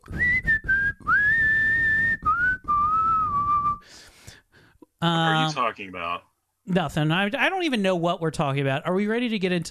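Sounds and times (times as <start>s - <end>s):
person whistling a song melody: 0.0s - 3.9s
speech: 5.0s - 9.6s.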